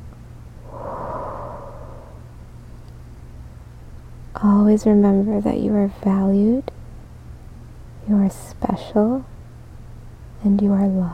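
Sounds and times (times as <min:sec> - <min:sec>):
slow deep breath in and out: 0:00.6 - 0:02.5
speech: 0:04.4 - 0:06.8, 0:08.1 - 0:09.3, 0:10.4 - 0:11.1.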